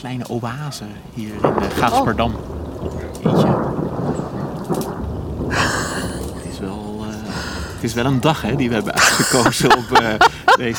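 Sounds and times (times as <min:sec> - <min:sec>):
speech: 0:00.0 - 0:04.2, 0:07.8 - 0:10.7
steady rainfall: 0:00.0 - 0:10.7
thunder after a lightning strike: 0:00.8 - 0:10.7
laughter: 0:05.5 - 0:10.7.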